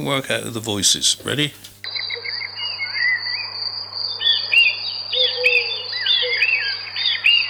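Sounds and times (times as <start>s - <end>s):
speech: 0.0s - 1.8s
birds singing and twittering in a garden: 1.8s - 7.4s.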